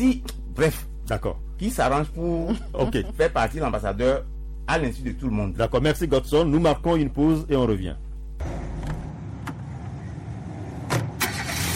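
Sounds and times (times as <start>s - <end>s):
speech: 0.0s - 8.8s
car engine starting: 8.4s - 11.7s.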